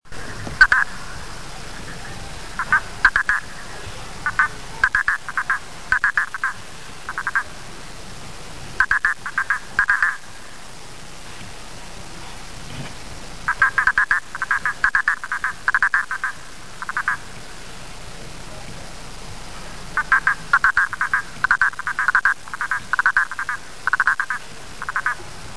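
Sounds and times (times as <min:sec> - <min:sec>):
Hypsiboas prasinus frog: 0:00.5 - 0:01.2, 0:02.0 - 0:07.7, 0:08.8 - 0:10.4, 0:13.5 - 0:17.4, 0:20.0 - 0:25.4.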